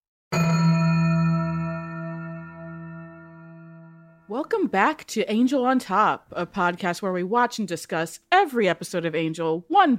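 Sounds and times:
single bell struck: 0.3 - 4.3
speech: 4.3 - 9.9.

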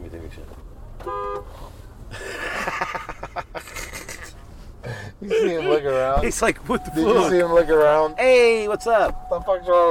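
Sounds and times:
rough pulsing vehicle noise: 0.0 - 9.9
car horn honking: 1.0 - 1.6, 6.7 - 9.9
speech: 5.2 - 9.9.

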